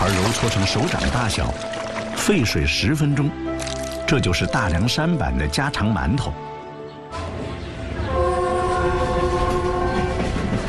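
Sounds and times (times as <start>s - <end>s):
speech: 0.1s - 6.5s
train horn sounding a sustained steady blast: 7.1s - 10.6s.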